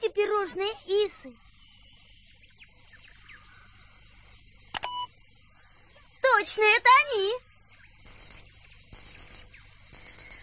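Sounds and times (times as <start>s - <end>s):
speech: 0.3s - 1.5s, 6.4s - 7.5s
high-pitched electronic alarm beeping: 4.8s - 5.2s, 7.8s - 10.4s.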